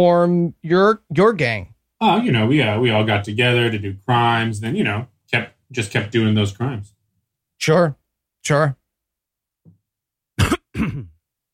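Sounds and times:
speech: 0.0s - 7.0s, 7.6s - 8.8s
person clearing throat: 10.4s - 11.2s
person coughing: 10.4s - 11.2s.

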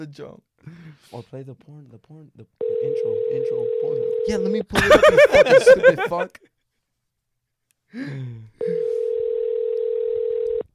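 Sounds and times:
speech: 0.0s - 6.5s, 7.9s - 9.0s
steady mid-pitched telephone tone while dialing a call: 2.6s - 4.3s, 8.6s - 10.7s
laughter: 4.8s - 6.4s.

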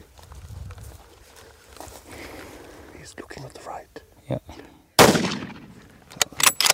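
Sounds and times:
people whispering tensely: 2.1s - 4.8s
rifle gunshots fired at a wounded rhino in grass: 5.0s - 6.7s.

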